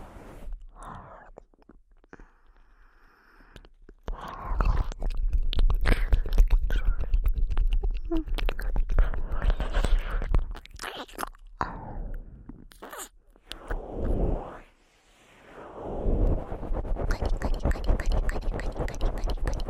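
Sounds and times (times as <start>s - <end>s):
dense wet mouth clicks and crackles: 0.6s - 2.7s, 3.4s - 14.2s, 17.0s - 19.6s
soft breathy mouthing ear eating sounds: 0.7s - 13.8s.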